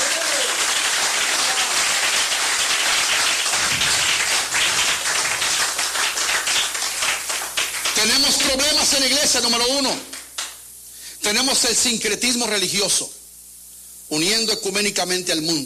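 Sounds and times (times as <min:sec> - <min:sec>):
audience applauding at an evening church service: 0:00.0 - 0:08.8
speech: 0:08.5 - 0:10.2, 0:11.3 - 0:13.2, 0:14.1 - 0:15.6.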